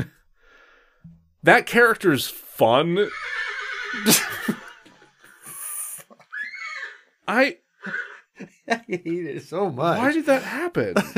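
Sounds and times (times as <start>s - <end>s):
speech: 1.4s - 4.6s, 7.3s - 11.1s
horse whinnying and neighing from a browser tab: 2.9s - 8.4s
horse snorting: 3.1s - 5.1s
laughter: 3.8s - 6.3s, 7.8s - 11.1s.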